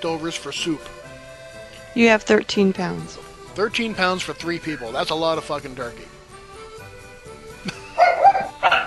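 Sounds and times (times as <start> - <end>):
speech: 0.0 - 1.1, 2.0 - 6.2
household pet dogs barking: 7.7 - 8.8.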